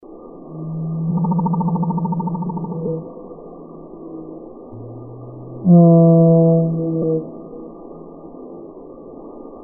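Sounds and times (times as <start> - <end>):
blue whale call: 0.5 - 3.3, 4.0 - 7.8.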